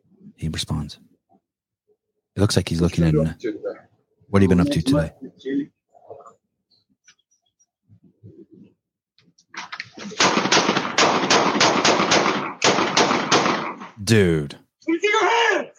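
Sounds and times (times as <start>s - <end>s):
speech: 0.4s - 1.1s, 2.4s - 5.8s, 14.1s - 14.6s
rapid gunfire bursts from a played video: 10.1s - 13.8s.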